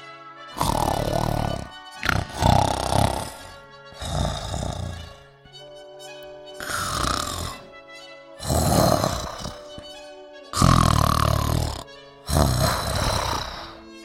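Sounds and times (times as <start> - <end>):
ogre snoring with deep rasping breaths: 0.5 - 5.2, 6.6 - 7.7, 8.4 - 9.8, 10.6 - 13.9.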